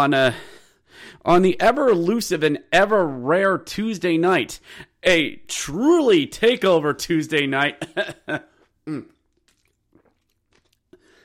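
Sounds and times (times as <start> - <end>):
speech: 0.0 - 9.1
loud raspy coughs: 7.8 - 9.2.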